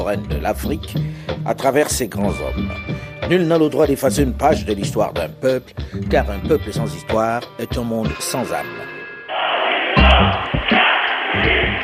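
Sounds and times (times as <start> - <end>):
speech: 0.0 - 9.0
dense roaring crowd of protesters shouting: 9.3 - 11.8.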